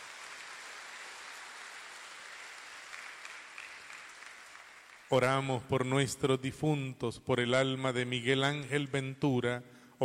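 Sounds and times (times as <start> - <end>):
audience applauding in a large room: 0.0 - 5.3
speech: 5.1 - 10.0.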